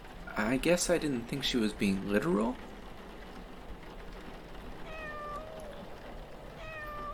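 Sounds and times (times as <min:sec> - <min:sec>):
steady hiss of rainfall: 0:00.0 - 0:07.1
speech: 0:00.4 - 0:02.7
cat meowing outdoors in the rain: 0:04.8 - 0:07.1.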